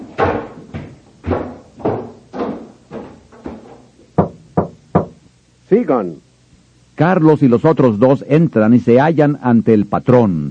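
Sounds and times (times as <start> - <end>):
knocking on a wooden door: 0.2 - 5.2
speech: 5.7 - 6.2, 7.0 - 10.4.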